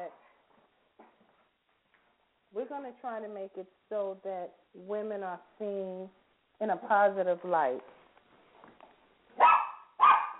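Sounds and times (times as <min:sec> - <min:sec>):
speech: 0:02.5 - 0:08.0
dog barking in a studio: 0:09.3 - 0:10.3.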